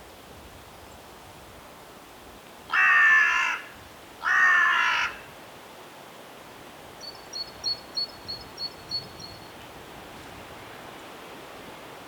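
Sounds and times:
carrion crow Corvus corone uttering harsh drawn-out caws: 2.7 - 5.3.

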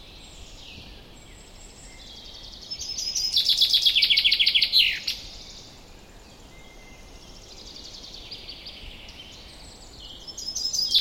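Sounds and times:
common chaffinch Fringilla coelebs song trill: 0.0 - 10.9.

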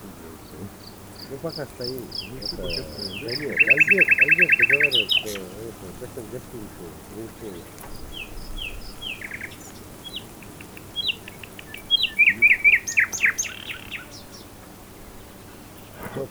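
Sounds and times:
laughter: 0.0 - 7.7
common nightingale Luscinia megarhynchos singing: 0.0 - 16.2
speech: 1.3 - 8.1.

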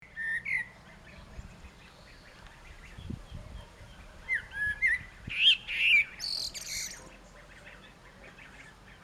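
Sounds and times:
common blackbird Turdus merula song: 0.0 - 9.0.

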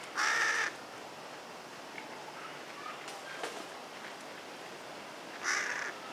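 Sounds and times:
Carrion crow Corvus corone giving rough caws: 0.2 - 0.8, 5.4 - 6.0.

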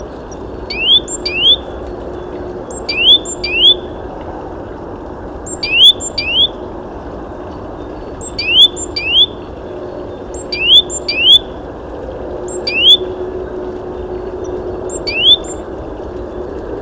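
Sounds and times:
great tit Parus major calling: 0.4 - 3.9, 5.4 - 6.6, 7.8 - 11.6, 12.4 - 13.2, 14.5 - 15.6.

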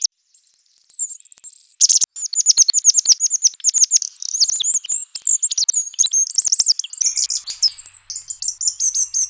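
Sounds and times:
bird giving very high thin chirps and twitters: 0.0 - 9.2
brief sustained bird whistle: 2.2 - 9.2.

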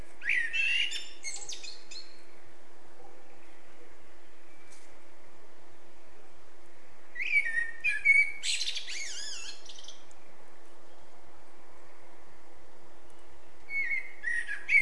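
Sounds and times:
Eurasian blackbird Turdus merula singing: 0.2 - 2.2, 7.2 - 10.1, 13.4 - 14.8.

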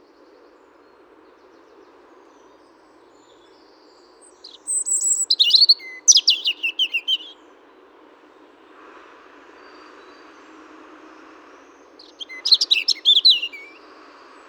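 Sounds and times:
European robin (Erithacus rubecula) singing: 4.1 - 7.4, 12.0 - 13.9.

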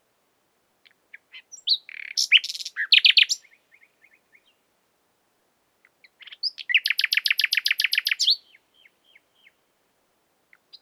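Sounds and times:
common nightingale Luscinia megarhynchos singing: 0.8 - 4.6, 5.8 - 9.6, 10.5 - 10.8.

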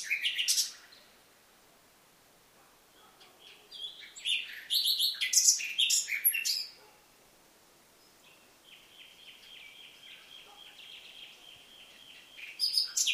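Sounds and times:
common nightingale Luscinia megarhynchos singing: 0.0 - 1.2, 3.0 - 6.9, 8.0 - 13.1.

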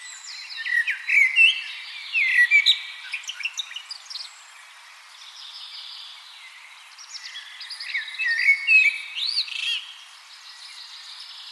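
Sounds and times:
common blackbird Turdus merula song: 0.0 - 11.4.

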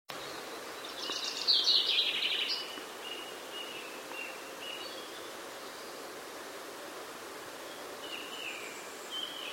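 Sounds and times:
background hiss: 0.1 - 9.5
common chaffinch Fringilla coelebs calling: 0.2 - 6.0, 8.0 - 9.5.

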